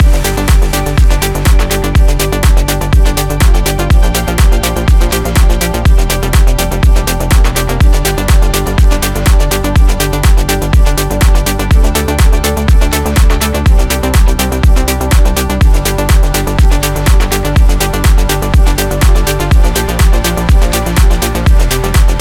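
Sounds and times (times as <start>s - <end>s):
science and innovation music loop: 0.0s - 22.1s.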